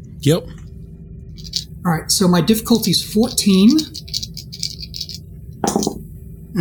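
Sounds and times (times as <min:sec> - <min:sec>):
speech: 0:00.2 - 0:00.6, 0:01.4 - 0:04.3
three dice rattling and clattering: 0:01.4 - 0:01.7, 0:02.7 - 0:06.0.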